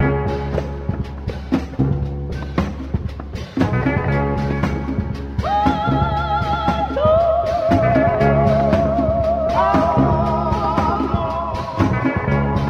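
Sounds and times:
guitar loops: 0:00.0 - 0:12.6
person singing: 0:05.4 - 0:12.6.

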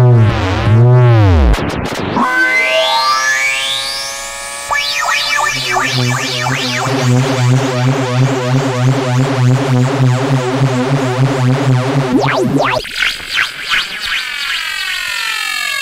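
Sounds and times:
various electronic zaps: 0:00.2 - 0:15.7.

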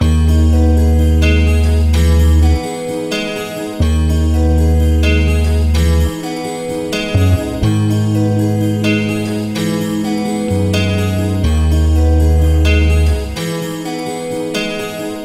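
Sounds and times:
heavy bass: 0:00.0 - 0:02.6, 0:03.8 - 0:06.2, 0:07.1 - 0:13.4
sad guitar loop: 0:00.0 - 0:15.2.

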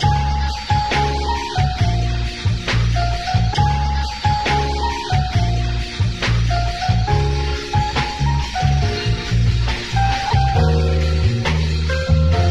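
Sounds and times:
piano loop: 0:00.0 - 0:12.4.

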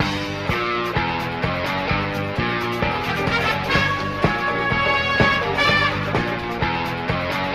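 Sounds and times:
guitar: 0:00.0 - 0:07.5
horns: 0:02.5 - 0:07.4.

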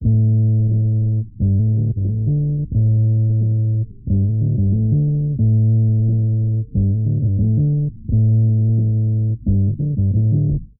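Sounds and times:
bass loop: 0:00.0 - 0:10.7.

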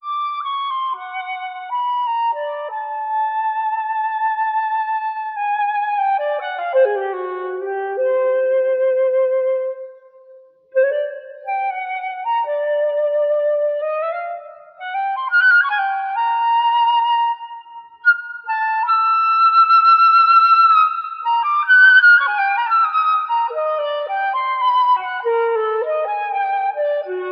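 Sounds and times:
wandering flute melody: 0:00.0 - 0:27.3.

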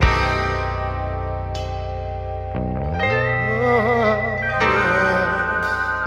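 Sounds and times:
keyboard playing sad loop: 0:00.0 - 0:06.0
person singing woah oh yeah: 0:03.0 - 0:06.0.

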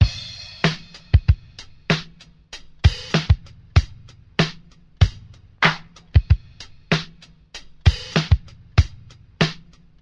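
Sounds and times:
boom bap drum loop: 0:00.0 - 0:10.0
isolated hand clap: 0:05.6 - 0:05.9.

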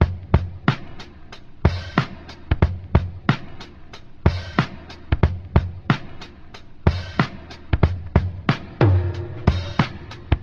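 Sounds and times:
boom bap drum loop: 0:00.0 - 0:10.4
sudden tom drum hit in boom bap drum loop: 0:08.8 - 0:10.4.

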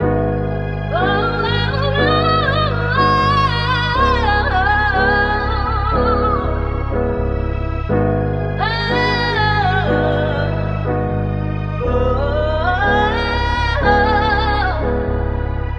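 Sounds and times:
piano in sad funk loop: 0:00.0 - 0:15.7
strings in sad funk loop: 0:00.0 - 0:15.7
voice in sad funk loop: 0:00.8 - 0:06.7, 0:08.6 - 0:11.0, 0:11.9 - 0:15.1.

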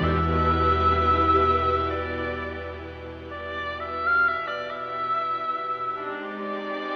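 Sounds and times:
sad broken-hearted string music loop: 0:00.0 - 0:06.9.

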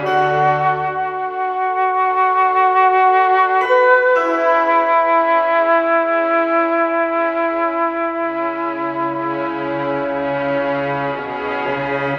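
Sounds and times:
sad strings looping: 0:00.0 - 0:02.5, 0:03.3 - 0:06.8, 0:08.5 - 0:12.1
sad flutes looping: 0:00.0 - 0:12.1.

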